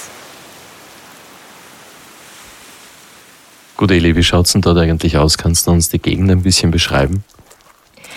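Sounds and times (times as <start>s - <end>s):
river water flowing outdoors: 0.0s - 4.3s, 7.2s - 8.1s
rain outdoors: 0.0s - 8.1s
speech: 3.8s - 7.4s.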